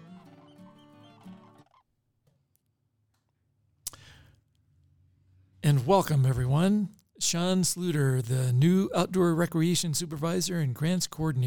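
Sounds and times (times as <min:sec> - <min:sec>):
turkey gobbling: 0:00.0 - 0:01.8
speech: 0:05.6 - 0:11.4.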